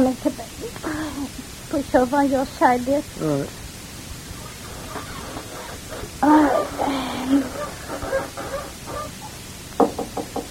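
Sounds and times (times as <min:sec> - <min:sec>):
speech: 0:00.0 - 0:03.6
drawn-out moaning wailing voice: 0:03.2 - 0:03.5, 0:06.2 - 0:07.6
quick firm knocks on a door: 0:09.8 - 0:10.4.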